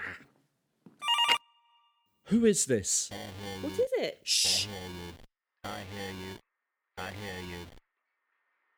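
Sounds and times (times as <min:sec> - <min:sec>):
telephone bell ringing: 0:01.0 - 0:01.9
speech: 0:02.3 - 0:06.4, 0:07.0 - 0:07.8.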